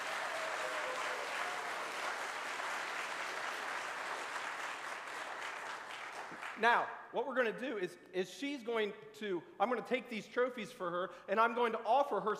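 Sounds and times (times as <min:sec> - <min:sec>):
crowd clapping: 0:00.0 - 0:06.7
speech: 0:06.6 - 0:12.3.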